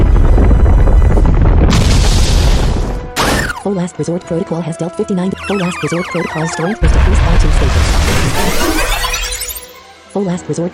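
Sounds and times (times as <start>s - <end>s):
video game earthquake attack effect, low rumbling roar with crackling: 0.0s - 3.1s
speech: 3.8s - 9.1s, 10.1s - 10.7s.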